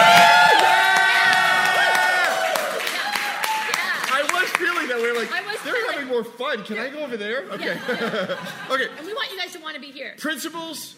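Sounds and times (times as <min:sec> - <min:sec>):
audience cheering: 0:00.0 - 0:05.8
scattered clapping: 0:00.0 - 0:06.0
speech: 0:06.2 - 0:10.9
laughter: 0:07.4 - 0:09.2.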